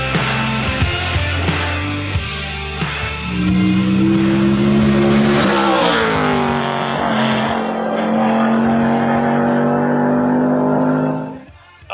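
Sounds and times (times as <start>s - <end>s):
race car engine revving and shifting gears at Pikes Peak hill climb: 0.2s - 11.5s
race car tires squealing: 3.0s - 11.5s.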